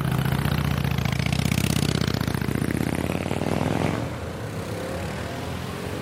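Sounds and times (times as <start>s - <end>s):
loud motorcycle engine rumbling and passing by: 0.0s - 5.0s.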